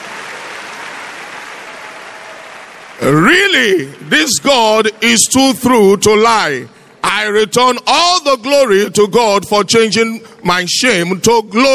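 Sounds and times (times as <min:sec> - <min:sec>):
crowd clapping: 0:00.0 - 0:04.1
speech: 0:03.0 - 0:11.7.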